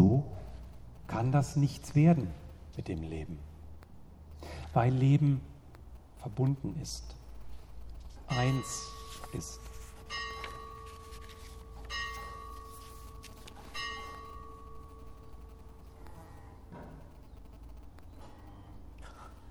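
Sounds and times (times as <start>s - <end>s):
speech: 1.1s - 3.5s, 4.4s - 5.5s, 6.2s - 7.2s, 8.3s - 10.2s
bell needing repair ringing: 8.3s - 14.9s.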